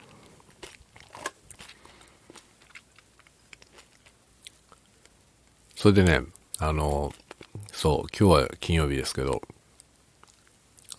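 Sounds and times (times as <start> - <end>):
crunchy potato stick snacks being chewed: 0.0 - 5.2, 6.8 - 7.7, 9.8 - 10.9
speech: 5.8 - 7.2, 7.8 - 9.5.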